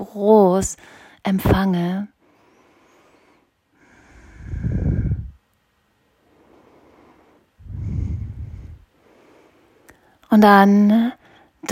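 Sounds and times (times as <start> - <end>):
speech: 0.0 - 2.2, 10.3 - 11.6
deep slow conscious breathing during a guided relaxation: 2.2 - 5.4, 6.2 - 10.2.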